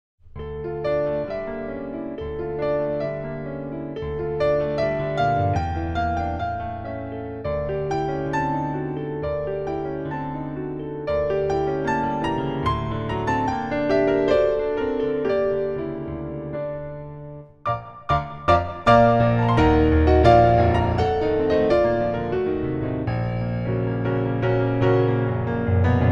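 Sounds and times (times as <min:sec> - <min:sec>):
D274 grand piano: 0:00.2 - 0:26.1.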